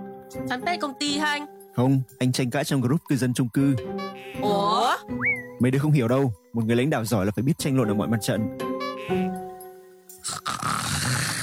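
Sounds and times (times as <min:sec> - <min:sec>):
speech: 0:00.3 - 0:09.4
man snoring asleep sitting upright at work: 0:10.2 - 0:11.4.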